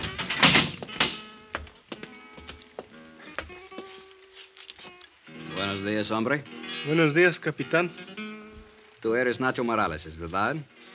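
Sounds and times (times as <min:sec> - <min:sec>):
heavy steel grill door rattling and clanking as two people open it: 0:00.0 - 0:01.2
speech: 0:05.6 - 0:08.1, 0:09.0 - 0:10.7.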